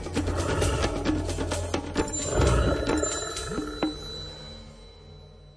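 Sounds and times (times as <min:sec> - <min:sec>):
brown bear growling: 0:00.1 - 0:04.4.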